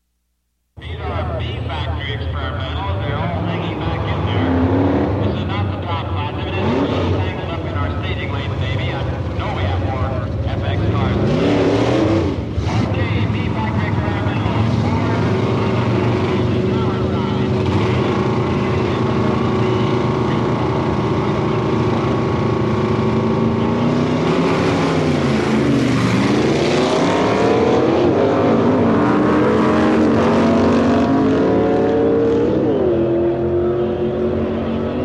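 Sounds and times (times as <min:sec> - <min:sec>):
drag race cars: 0:00.8 - 0:35.0.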